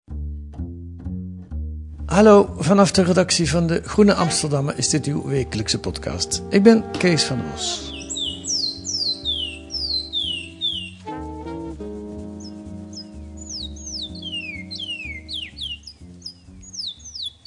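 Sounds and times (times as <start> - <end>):
low sustained musical tones: 0.6 - 17.4
speech: 2.1 - 7.9
Surinamese songbird singing: 2.2 - 17.4.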